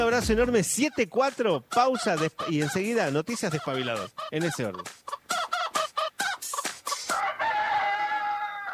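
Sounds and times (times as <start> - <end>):
speech: 0.0 - 5.2
rooster clucking and crowing: 1.8 - 8.7.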